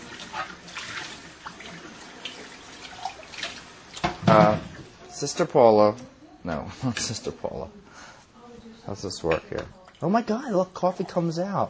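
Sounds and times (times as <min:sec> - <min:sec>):
tap water running as a coffee mug is rinsed out: 0:00.0 - 0:04.9
speech: 0:04.3 - 0:07.8, 0:08.9 - 0:11.6.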